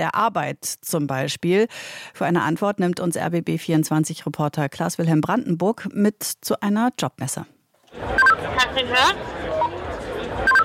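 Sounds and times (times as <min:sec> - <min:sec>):
speech: 0:00.0 - 0:09.5
faint chatter: 0:07.8 - 0:10.6
short electronic beeps of a walkie-talkie: 0:08.2 - 0:08.4, 0:10.5 - 0:10.6.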